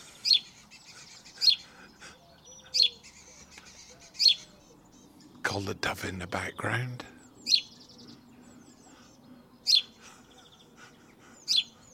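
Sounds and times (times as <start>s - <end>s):
faint birdsong: 0.0s - 11.9s
sparrow cheeping: 0.1s - 5.4s, 7.2s - 11.9s
speech: 5.6s - 7.2s.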